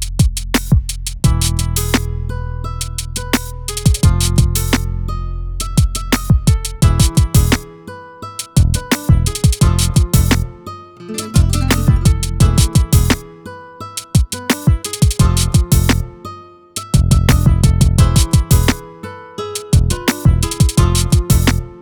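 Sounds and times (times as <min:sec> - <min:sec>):
hip hop exotica music loop in E minor: 0:00.3 - 0:02.1, 0:02.9 - 0:04.8, 0:05.6 - 0:07.7, 0:08.4 - 0:13.3, 0:14.0 - 0:16.1, 0:16.8 - 0:18.9, 0:19.5 - 0:21.7.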